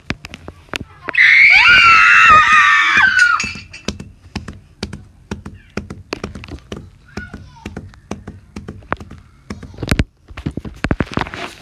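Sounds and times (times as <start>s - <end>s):
children screaming in a forest: 1.1s - 3.7s.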